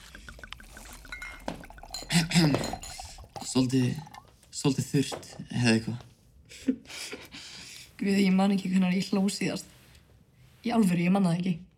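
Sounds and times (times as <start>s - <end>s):
glasses clinking in a toast: 0.0s - 4.3s
soft liquid-like rustling: 0.0s - 4.6s
speech: 2.4s - 2.8s, 3.6s - 7.0s, 8.0s - 9.7s, 10.6s - 11.7s.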